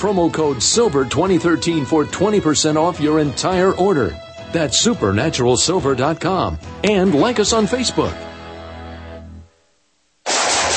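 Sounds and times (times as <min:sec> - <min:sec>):
speech: 0:00.0 - 0:08.3
gunfire: 0:10.2 - 0:10.7.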